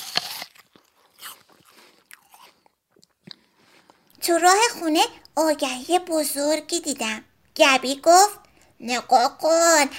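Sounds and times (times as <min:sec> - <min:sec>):
crisp bites and crunches into an apple: 0:00.0 - 0:04.0
quiet chewing of an apple: 0:00.0 - 0:04.2
speech: 0:04.2 - 0:09.9.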